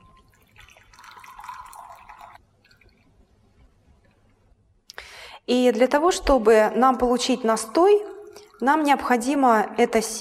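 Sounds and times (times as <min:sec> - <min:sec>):
faint water drips: 0:00.0 - 0:04.2, 0:06.9 - 0:09.4
boiling water pouring over flax seeds in a container: 0:00.3 - 0:03.0, 0:07.4 - 0:09.3
speech: 0:05.5 - 0:10.2.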